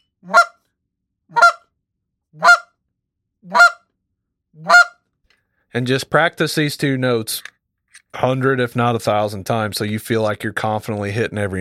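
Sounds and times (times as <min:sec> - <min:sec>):
goose call blown in short sharp clucking notes: 0:00.3 - 0:00.6, 0:01.3 - 0:01.6, 0:02.4 - 0:02.7, 0:03.5 - 0:03.8, 0:04.6 - 0:05.0
speech: 0:05.8 - 0:07.5, 0:08.1 - 0:11.5.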